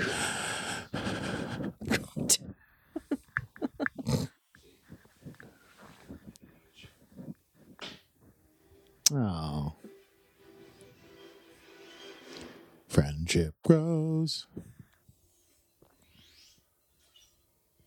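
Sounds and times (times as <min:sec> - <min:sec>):
heavy breathing against the microphone: 0:00.0 - 0:08.5
speech: 0:13.3 - 0:14.7.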